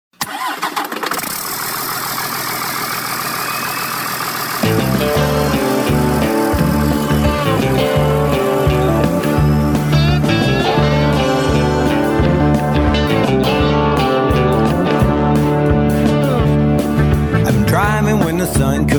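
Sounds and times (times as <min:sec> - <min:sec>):
big truck engine cranking over and running: 0:00.3 - 0:18.9
heavier rhythmic tonal layer: 0:04.6 - 0:18.9.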